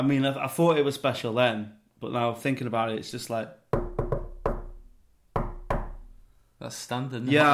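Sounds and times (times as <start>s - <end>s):
speech: 0.0s - 3.6s, 6.6s - 7.5s
firm knocks on a door in a patterned rhythm: 3.7s - 6.2s.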